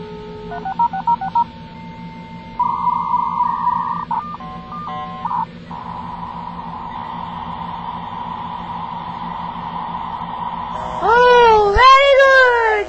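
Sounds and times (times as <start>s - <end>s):
long steady dial-up line tone: 0.0s - 12.8s
low constant hum: 0.0s - 12.8s
telephone keypad tones dialing a dial-up internet line: 0.5s - 1.5s, 2.6s - 5.5s.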